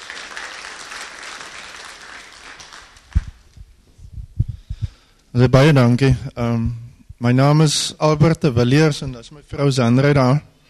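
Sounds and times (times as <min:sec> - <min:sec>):
audience applause: 0:00.0 - 0:03.4
scattered low thumps and knocks: 0:03.2 - 0:05.0
speech: 0:05.3 - 0:10.5.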